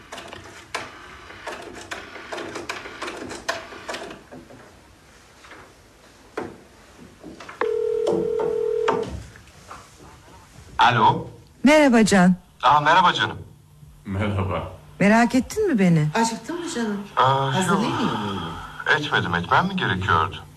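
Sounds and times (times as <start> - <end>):
steady telephone tone: 7.6 - 9.1
speech: 10.8 - 13.5, 14.1 - 20.5.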